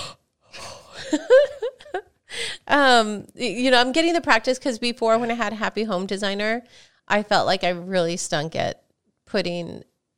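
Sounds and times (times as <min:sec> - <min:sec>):
person yawning: 0:00.0 - 0:01.0
speech: 0:01.1 - 0:01.5, 0:02.7 - 0:09.9.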